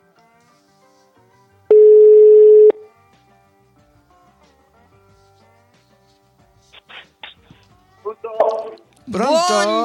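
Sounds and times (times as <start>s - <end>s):
telephone ringback tone as a call is placed: 1.7s - 2.8s
speech: 9.2s - 9.8s.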